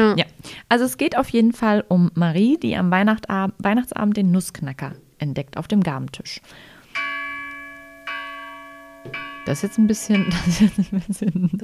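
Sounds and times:
speech: 0:00.0 - 0:06.7, 0:09.0 - 0:11.6
bell ringing: 0:07.0 - 0:11.4
laughter: 0:10.2 - 0:11.6.

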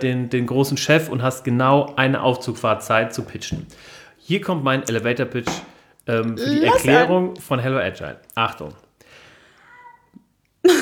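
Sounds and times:
speech: 0:00.0 - 0:08.8
male cat meowing: 0:06.4 - 0:07.1, 0:09.6 - 0:10.1.

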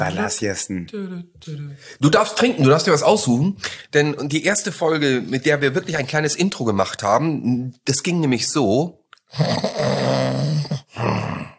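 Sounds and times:
speech: 0:00.0 - 0:11.2
person snoring: 0:09.3 - 0:11.5.

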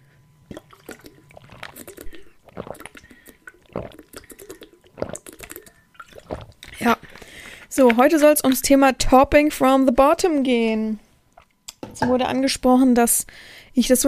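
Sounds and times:
person gulping water: 0:00.5 - 0:07.3
faint breathing: 0:02.0 - 0:03.5, 0:06.7 - 0:07.7, 0:13.3 - 0:13.8
speech: 0:06.8 - 0:07.0, 0:07.7 - 0:11.0, 0:12.0 - 0:14.0.

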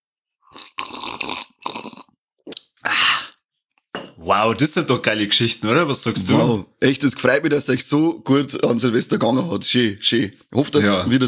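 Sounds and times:
slurping sips of coffee: 0:00.5 - 0:03.4
speech: 0:04.2 - 0:11.2.

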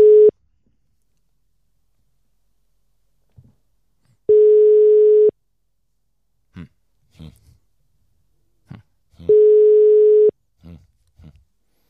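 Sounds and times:
telephone ringing tone while a call is placed: 0:00.0 - 0:00.3, 0:04.3 - 0:05.3, 0:09.3 - 0:10.3.

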